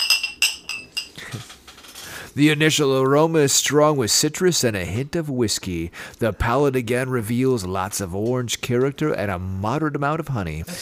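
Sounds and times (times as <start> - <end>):
glasses of liquor clinking together in a toast: 0.0 - 1.3
speech: 2.4 - 10.7.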